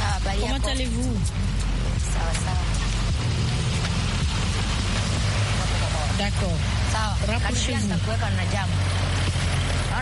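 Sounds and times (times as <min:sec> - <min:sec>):
road traffic engine rumble and road noise: 0:00.0 - 0:09.9
speech: 0:00.2 - 0:03.6, 0:06.2 - 0:09.2.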